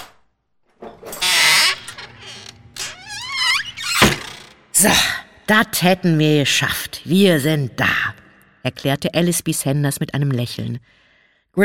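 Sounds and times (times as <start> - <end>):
rattling noise: 0.7 - 4.7
door hinges creaking as a butler opens the door: 0.7 - 4.8
speech: 4.8 - 11.6.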